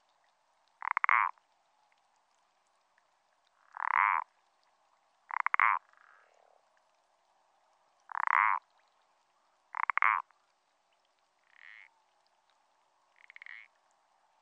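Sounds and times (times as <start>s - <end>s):
parsley frog rasping pulsed croaks in France: 0.8s - 1.4s, 3.6s - 4.3s, 5.3s - 6.3s, 8.1s - 8.7s, 9.7s - 10.3s, 11.4s - 11.9s, 13.2s - 13.7s.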